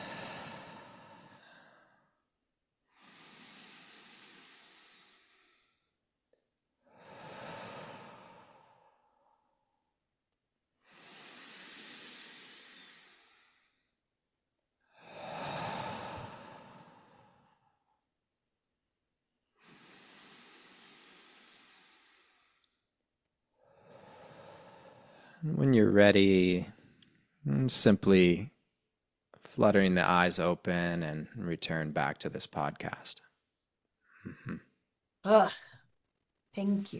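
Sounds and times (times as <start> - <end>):
slow deep breathing during a guided meditation: 0.0 - 10.1, 10.8 - 14.1, 14.8 - 18.2, 19.5 - 25.6, 34.0 - 34.7
speech: 25.4 - 26.8, 27.4 - 28.5, 29.6 - 33.2, 34.2 - 34.6, 35.2 - 35.7, 36.6 - 36.9.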